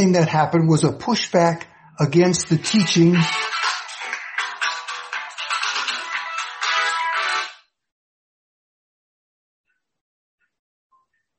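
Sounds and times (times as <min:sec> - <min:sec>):
speech: 0:00.0 - 0:03.5
electronic melody phone ringtone from an incoming call: 0:02.3 - 0:07.6.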